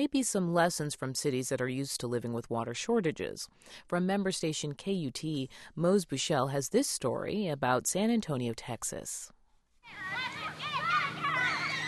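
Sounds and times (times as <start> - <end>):
speech: 0.0 - 10.4
children playing and calling in a riverside park in San Antonio, Texas: 9.9 - 11.8.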